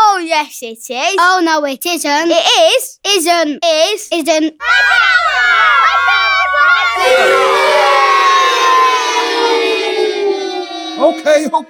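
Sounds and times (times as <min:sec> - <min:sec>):
speech: 0:00.4 - 0:05.6, 0:07.0 - 0:07.6, 0:11.1 - 0:11.6
crowd of children shouting back and forth: 0:04.6 - 0:11.6.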